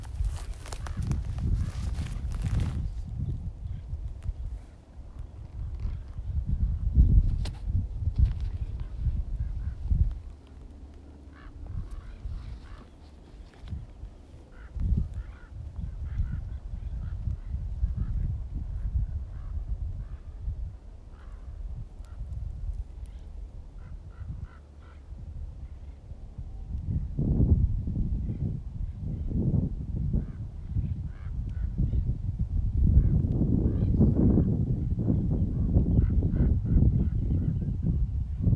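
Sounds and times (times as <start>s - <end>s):
wind rumbling low and heavy: 0.0s - 38.5s
crows cawing: 11.2s - 13.0s, 14.5s - 16.6s.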